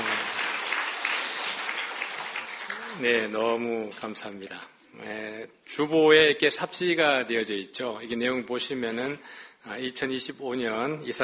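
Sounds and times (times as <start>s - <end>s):
church congregation applauding: 0.0s - 3.4s
speech: 3.0s - 11.2s.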